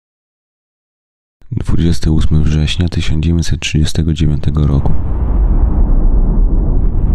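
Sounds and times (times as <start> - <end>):
speech: 1.5 - 5.2
German artillery shelling Polish defenders at Modlin at night: 4.8 - 7.1.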